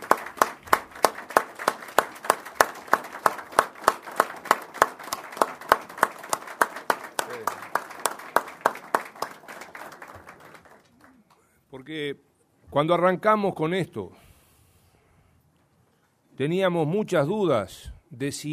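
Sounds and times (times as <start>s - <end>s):
crowd clapping rhythmically for motorcycle and bicycle delivery riders: 0.0s - 11.4s
speech: 11.9s - 14.2s, 16.4s - 18.5s.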